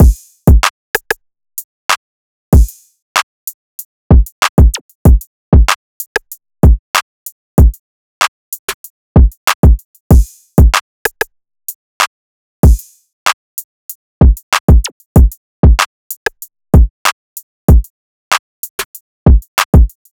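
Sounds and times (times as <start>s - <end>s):
drum loop at 95 BPM: 0.0s - 1.1s, 2.6s - 2.8s, 4.1s - 7.0s, 7.6s - 7.8s, 8.8s - 11.2s, 12.6s - 12.8s, 14.2s - 16.9s, 17.7s - 17.9s, 18.7s - 20.1s.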